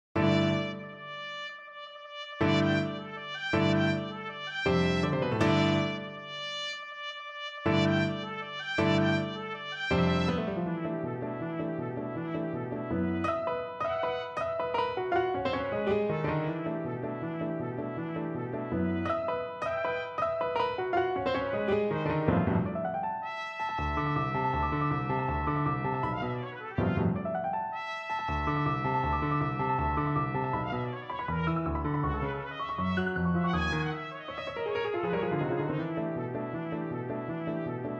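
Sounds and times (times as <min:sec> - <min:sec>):
piano: 0:00.0 - 0:37.9
trumpet: 0:00.1 - 0:37.9.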